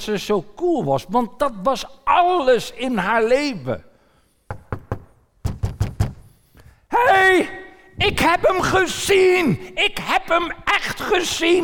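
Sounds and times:
speech: 0.0s - 3.9s, 7.4s - 11.6s
knocking on a door: 4.5s - 6.2s
person calling out: 6.9s - 11.6s.

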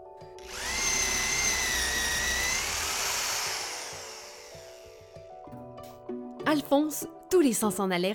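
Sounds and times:
power drill boring into wood: 0.4s - 5.4s
speech: 6.5s - 8.1s.

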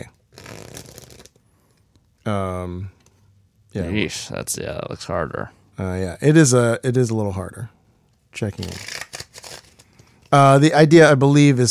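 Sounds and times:
playing cards being riffle-shuffled: 0.3s - 1.4s, 8.6s - 10.1s
speech: 2.3s - 3.0s, 3.7s - 7.8s, 8.4s - 9.0s, 10.3s - 11.7s.

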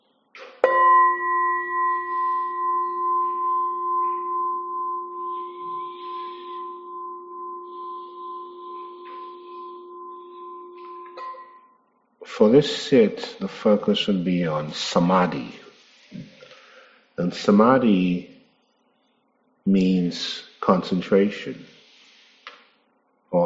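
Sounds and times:
meditation bell struck and ringing: 0.6s - 11.8s
speech: 12.4s - 15.6s, 17.3s - 18.3s, 19.7s - 21.7s.

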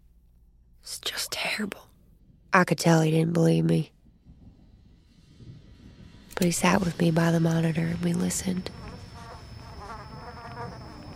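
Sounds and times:
speech: 1.0s - 1.9s, 2.6s - 4.0s, 6.4s - 8.8s
mosquito buzzing: 7.9s - 11.1s.

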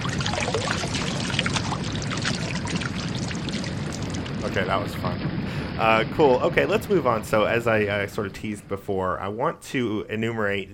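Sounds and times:
water splashing and churning: 0.0s - 8.3s
speech: 4.5s - 10.7s.

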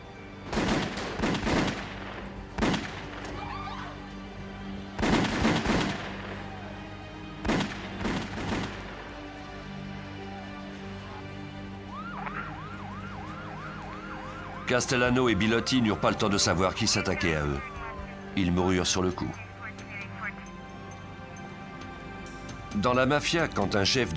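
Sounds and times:
gunfire sound effect of men opening fire: 0.5s - 1.9s, 5.0s - 6.0s, 7.4s - 8.8s
faint wavering siren-like tones: 11.9s - 15.8s
speech: 14.7s - 17.8s, 18.4s - 19.4s, 22.8s - 24.1s.

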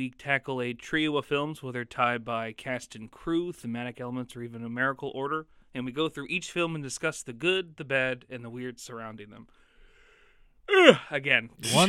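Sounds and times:
speech: 0.0s - 9.6s, 10.7s - 11.8s
person yawning: 10.7s - 11.8s.

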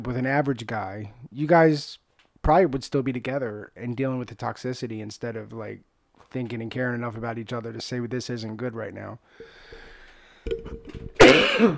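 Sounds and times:
speech: 0.0s - 9.8s, 10.4s - 11.7s
cough: 11.2s - 11.7s.

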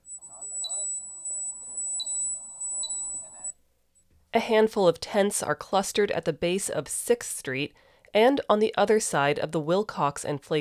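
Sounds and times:
high-pitched pinging anti-loitering noisemaker: 0.0s - 3.5s
indistinct voices murmuring: 0.1s - 3.5s
speech: 4.4s - 10.5s.

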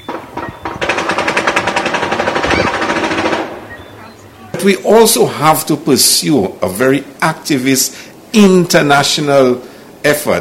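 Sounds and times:
automatic gunfire in back alleys and corridors: 0.0s - 3.6s
speech: 4.6s - 10.3s.

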